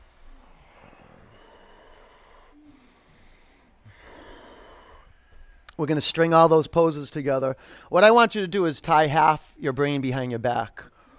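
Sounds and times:
many people breathing heavily in a yoga class: 0:00.0 - 0:05.8, 0:07.5 - 0:08.0, 0:10.8 - 0:11.1
speech: 0:05.8 - 0:10.9.

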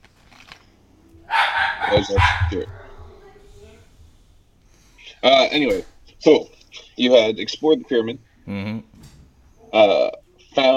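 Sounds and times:
dog barking and yipping: 0:01.2 - 0:03.6
speech: 0:01.9 - 0:02.8, 0:05.2 - 0:08.9, 0:09.7 - 0:10.7.

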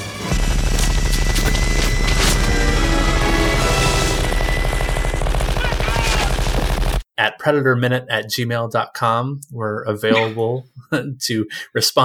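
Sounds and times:
minigun firing burst from movie clip: 0:00.2 - 0:07.0
speech: 0:07.4 - 0:12.0.

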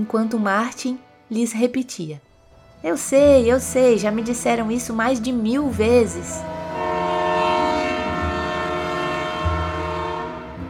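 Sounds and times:
speech: 0:00.0 - 0:06.6
train horn blowing in a long steady blast: 0:03.6 - 0:10.6.

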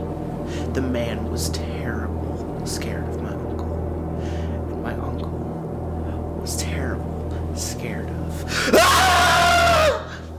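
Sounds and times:
low hum: 0:00.0 - 0:10.3
speech: 0:00.8 - 0:03.4, 0:06.4 - 0:09.3
person screaming: 0:08.6 - 0:10.2.

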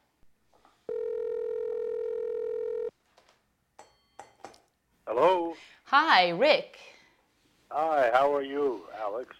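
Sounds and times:
loud steady telephone tone: 0:00.9 - 0:02.9
speech: 0:05.2 - 0:06.9, 0:07.7 - 0:09.3.

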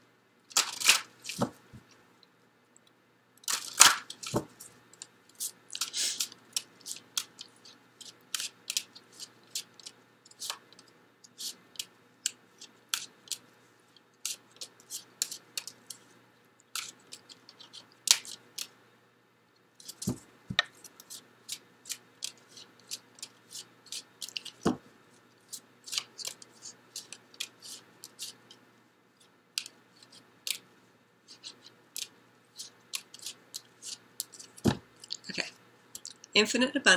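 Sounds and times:
deck of life purpose cards being handled: 0:00.5 - 0:01.9, 0:03.4 - 0:13.4, 0:14.2 - 0:16.1, 0:16.7 - 0:18.7, 0:19.8 - 0:28.6, 0:31.3 - 0:35.2
speech: 0:36.4 - 0:36.9.

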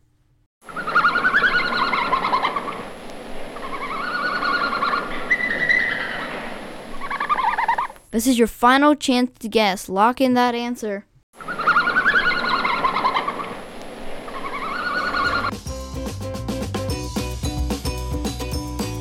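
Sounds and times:
red panda twittering and squeaking calls: 0:00.7 - 0:02.8, 0:03.6 - 0:08.0, 0:11.4 - 0:13.5, 0:14.3 - 0:15.5
speech: 0:08.2 - 0:11.1
music: 0:15.5 - 0:18.9.

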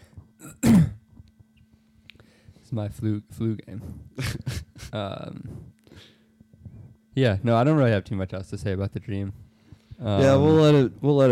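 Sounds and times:
low steady hum: 0:00.0 - 0:11.2
loud harsh cough: 0:00.4 - 0:01.0
person clearing throat: 0:00.4 - 0:01.1
speech: 0:02.7 - 0:05.7, 0:07.2 - 0:09.4, 0:10.0 - 0:11.2.

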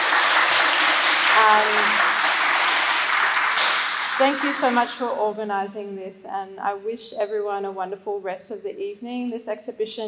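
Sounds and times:
audience applause: 0:00.0 - 0:05.0
speech: 0:01.4 - 0:02.1, 0:04.2 - 0:10.0.

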